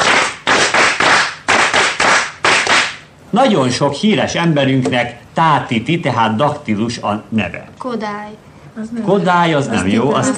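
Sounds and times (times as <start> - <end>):
loud rhythmic hand clapping of a name's syllables: 0.0 - 3.1
speech: 3.3 - 10.3.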